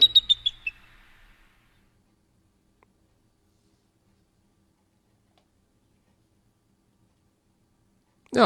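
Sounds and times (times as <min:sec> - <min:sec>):
played recording of bird chirps and twitter: 0:00.0 - 0:01.8.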